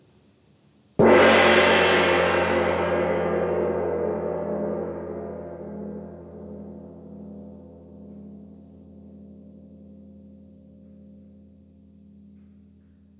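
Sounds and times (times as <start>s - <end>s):
gong vibration from a single low middle strike: 1.0s - 8.5s.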